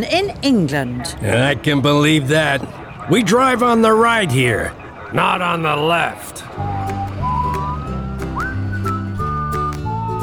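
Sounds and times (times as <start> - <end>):
speech: 0.0 - 6.7
police car siren wailing: 1.2 - 8.6
music: 5.2 - 10.2.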